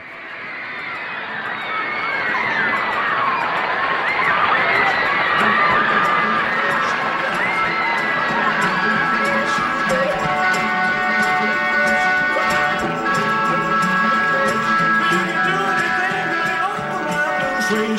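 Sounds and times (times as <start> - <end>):
large crowd of fans screaming and cheering at a stage performer: 0.0 - 17.9
laughter: 0.6 - 17.9.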